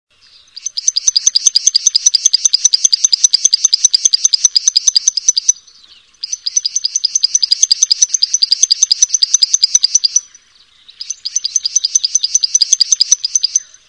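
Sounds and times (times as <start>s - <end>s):
bird song with rapid high sharp chattering notes: 0.1s - 13.8s.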